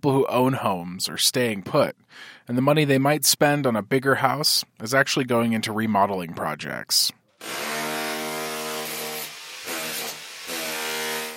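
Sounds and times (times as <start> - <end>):
speech: 0.0 - 7.7
power tool scraping tile off a shower wall during a remodel: 7.4 - 11.3.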